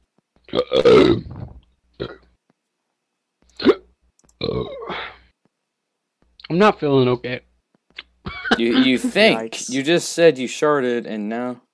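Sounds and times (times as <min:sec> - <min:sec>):
speech: 0:00.5 - 0:01.4, 0:06.5 - 0:07.5, 0:08.5 - 0:11.6
loud throaty burps: 0:00.5 - 0:02.3, 0:03.6 - 0:05.2.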